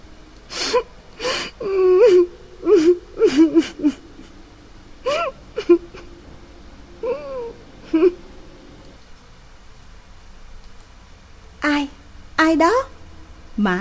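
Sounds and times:
person crying in a dark toilet with gasping whimpers and sobs: 0.5 - 4.4, 5.0 - 6.3, 7.0 - 8.3
speech: 12.5 - 12.9, 13.6 - 13.7.

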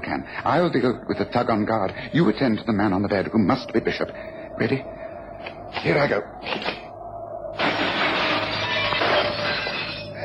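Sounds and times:
speech: 0.2 - 6.7
glass shattering as someone jumps through: 7.6 - 10.1.

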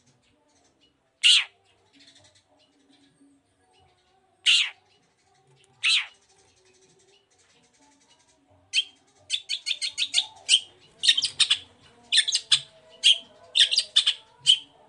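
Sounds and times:
long-tailed shrike singing: 5.8 - 6.2, 8.7 - 14.8.

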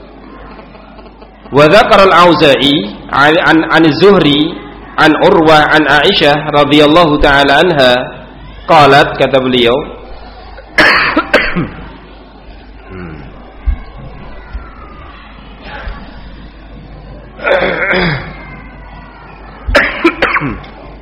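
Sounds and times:
speech: 1.5 - 10.0, 10.8 - 11.0, 11.6 - 11.8
person coughing harshly during a religious study lecture: 10.8 - 11.8, 17.4 - 18.3, 19.8 - 20.6.

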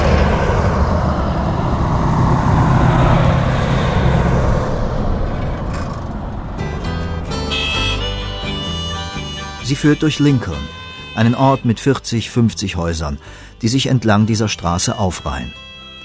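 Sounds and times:
car passing on a lonely mountain road in New Mexico: 0.0 - 7.9
speech: 9.7 - 15.7.

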